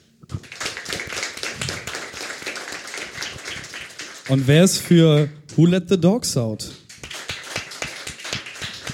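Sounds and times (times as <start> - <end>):
audience applause: 0.4 - 5.3, 6.9 - 8.9
speech: 4.3 - 6.8.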